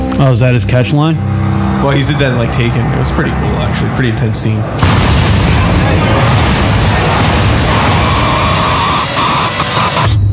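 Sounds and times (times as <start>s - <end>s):
speech: 0.2s - 6.4s
plane crash roar in a movie trailer: 1.3s - 10.2s.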